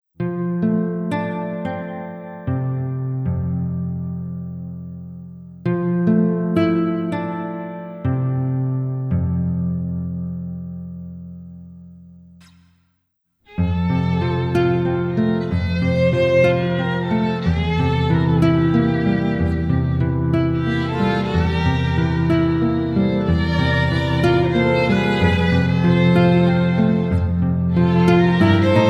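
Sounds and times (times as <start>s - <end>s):
guitar in nostalgic music: 0.2s - 12.2s, 13.5s - 28.8s
fiddle in nostalgic music: 13.5s - 28.8s.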